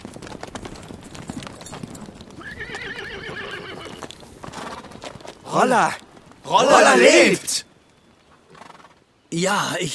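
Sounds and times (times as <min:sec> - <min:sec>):
horse hooves clip-clopping: 0:00.0 - 0:09.2
horse whinnying: 0:02.4 - 0:05.0
speech: 0:05.5 - 0:07.7, 0:09.3 - 0:09.9.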